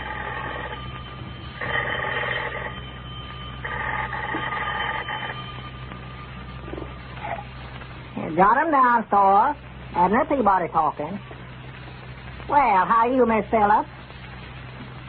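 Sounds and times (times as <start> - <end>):
old-fashioned telephone bell ringing in a store: 0.0 - 7.5
steady low hum: 0.0 - 15.0
speech: 8.4 - 11.2, 12.5 - 13.9.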